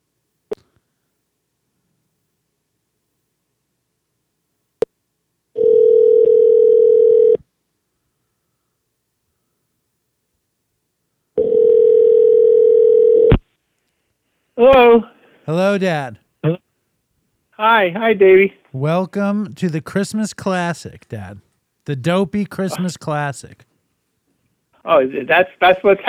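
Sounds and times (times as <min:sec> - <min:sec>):
outgoing phone call ringback tone: 0:05.6 - 0:07.4, 0:11.4 - 0:13.3
speech: 0:14.6 - 0:16.6, 0:17.6 - 0:23.7, 0:24.8 - 0:26.0.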